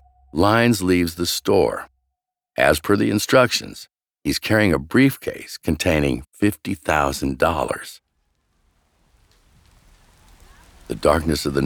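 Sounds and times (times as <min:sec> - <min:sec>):
speech: 0:00.3 - 0:01.9, 0:02.6 - 0:08.0, 0:10.9 - 0:11.6
heavy rain pouring on a city street at night: 0:08.3 - 0:11.6.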